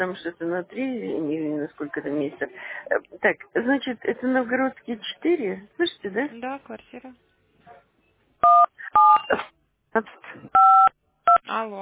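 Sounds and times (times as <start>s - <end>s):
speech: 0.0s - 7.3s, 8.9s - 10.9s, 11.5s - 11.7s
telephone keypad tones from buttons pressed during a call: 8.4s - 9.4s, 10.6s - 11.4s.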